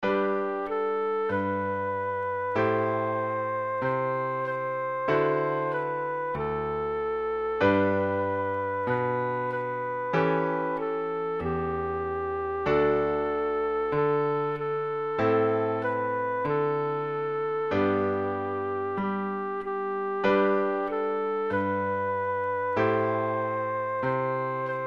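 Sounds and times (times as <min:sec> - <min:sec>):
piano: 0:00.0 - 0:24.8
recorder melody: 0:00.0 - 0:24.8.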